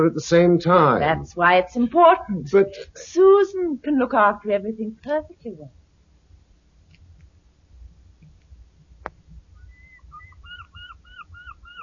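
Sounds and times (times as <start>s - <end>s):
speech: 0.0s - 5.8s
birds calling outdoors: 9.5s - 11.8s.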